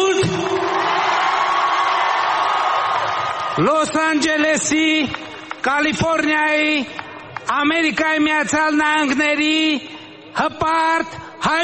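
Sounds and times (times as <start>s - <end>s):
thousands of people cheering in a Los Angeles park: 0.0s - 6.2s
speech: 3.6s - 11.6s.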